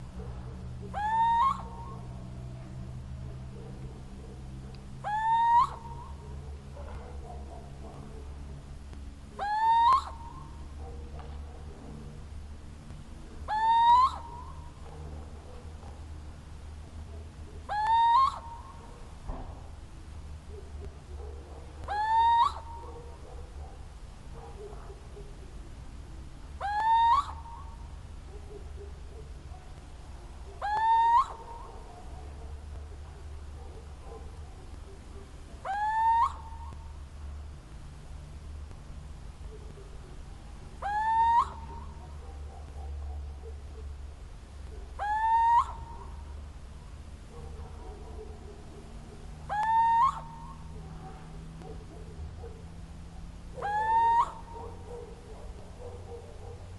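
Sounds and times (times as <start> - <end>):
little owl territorial call: 0.8 - 2.7, 5.0 - 6.6, 9.3 - 10.8, 13.4 - 15.0, 17.5 - 19.2, 21.8 - 23.3, 26.5 - 29.6, 30.5 - 37.0, 39.5 - 44.0, 44.6 - 46.4, 48.2 - 52.6, 53.4 - 56.6.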